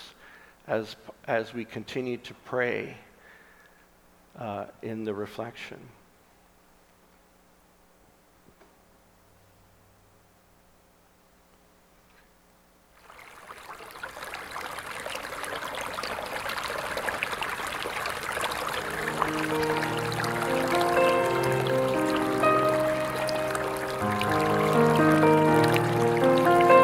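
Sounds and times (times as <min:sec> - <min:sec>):
speech: 0:00.7 - 0:03.1, 0:04.4 - 0:06.0
water trickling and splashing at a church altar: 0:12.9 - 0:26.8
soft sustained musical tones: 0:18.6 - 0:26.8.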